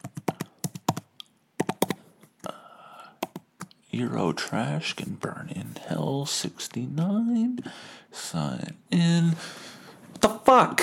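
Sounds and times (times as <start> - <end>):
typing a password on a computer keyboard: 0.0 - 2.0, 3.2 - 3.4
speech: 4.0 - 9.8, 10.5 - 10.8.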